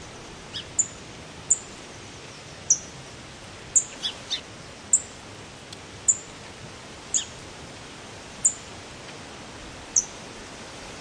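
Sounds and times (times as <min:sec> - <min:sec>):
forest ambience: 0:00.0 - 0:10.9.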